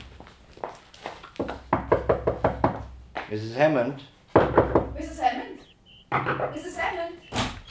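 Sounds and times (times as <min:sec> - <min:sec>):
knocking on a wooden door: 0:01.4 - 0:02.9, 0:04.3 - 0:05.0
speech: 0:03.3 - 0:04.5, 0:06.2 - 0:07.5.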